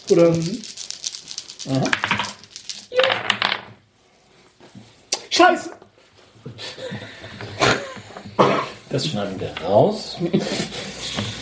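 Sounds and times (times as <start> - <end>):
dice clattering across a hard tabletop: 0.0 - 3.9
speech: 0.1 - 0.7, 1.6 - 2.2, 5.4 - 5.8, 8.9 - 11.3.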